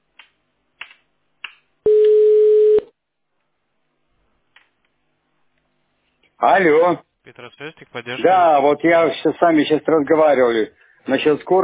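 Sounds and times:
telephone call-back connecting beep: 1.9s - 2.9s
speech: 6.4s - 11.6s.

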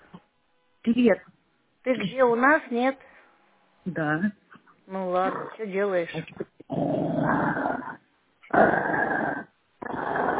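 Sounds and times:
speech: 0.9s - 3.1s, 3.8s - 7.9s, 8.5s - 9.1s
dog growling in sustained rumbling bursts: 5.2s - 5.6s, 6.3s - 10.3s.

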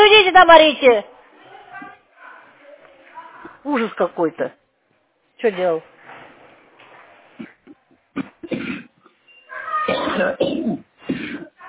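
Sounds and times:
speech: 0.4s - 1.2s, 3.6s - 4.6s, 5.4s - 5.9s, 10.2s - 10.8s
person coughing roughly: 7.4s - 9.0s, 9.9s - 11.6s.

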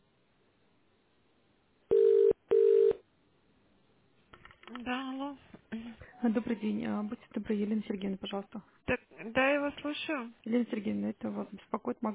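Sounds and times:
telephone tone dialing beeps on an office internal telephone exchange: 1.9s - 3.0s
speech: 6.2s - 12.1s.

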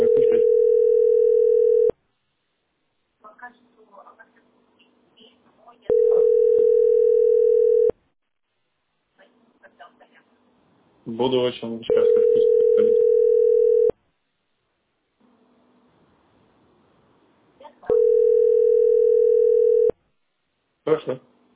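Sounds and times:
telephone ringback tone while placing a call: 0.0s - 1.9s, 5.9s - 7.9s, 11.9s - 13.9s, 17.9s - 19.9s
speech: 11.1s - 13.0s.

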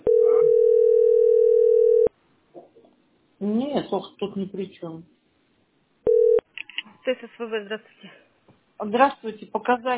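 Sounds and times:
telephone line tone on a call to a utility billing center: 0.0s - 2.1s, 6.1s - 6.4s
speech: 3.8s - 5.2s, 7.1s - 8.2s, 8.8s - 9.9s.

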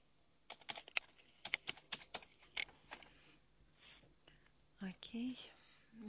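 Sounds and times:
keys being typed on a keyboard: 0.5s - 3.1s
speech: 4.8s - 6.0s.

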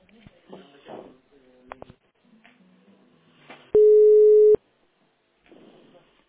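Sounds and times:
telephone line tone while a call is being connected: 3.8s - 4.6s.

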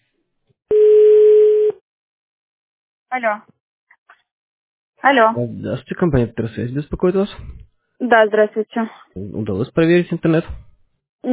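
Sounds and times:
telephone call tone beep while a phone call is placed: 0.7s - 1.8s
speech: 3.1s - 3.6s, 5.0s - 10.6s.

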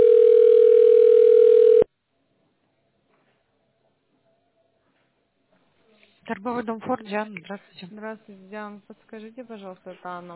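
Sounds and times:
telephone ringing tone while call is transferred: 0.0s - 1.9s
speech: 6.4s - 10.3s.

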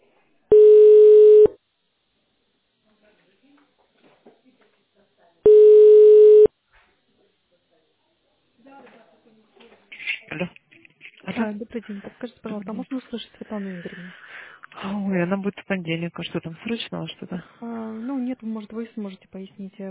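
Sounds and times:
telephone ringback tone while waiting for a call to connect: 0.5s - 1.5s, 5.5s - 6.5s
speech: 11.5s - 19.8s.

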